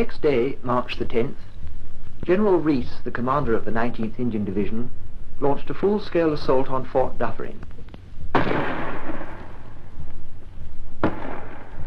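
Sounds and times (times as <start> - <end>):
speech: 0.0 - 1.5, 2.2 - 7.8
shell bursting on fort wall: 8.3 - 9.8, 11.0 - 11.8
5.5-inch gun firing at a fort wall: 8.3 - 10.0, 11.0 - 11.8.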